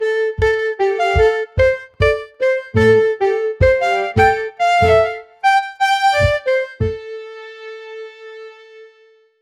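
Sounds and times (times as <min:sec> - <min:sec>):
European medieval music: 0:00.0 - 0:08.1.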